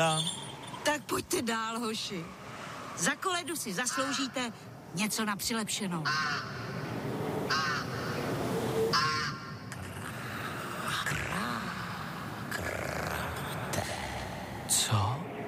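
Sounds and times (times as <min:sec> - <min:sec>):
speech: 0:00.0 - 0:02.4, 0:03.0 - 0:06.6
steady outdoor hum: 0:00.0 - 0:15.4
rooks cawing: 0:03.8 - 0:04.6, 0:06.0 - 0:09.8.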